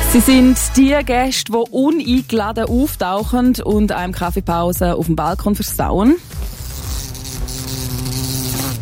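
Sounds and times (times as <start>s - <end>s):
speech: 0.1s - 6.5s
wasp buzzing: 5.9s - 8.8s.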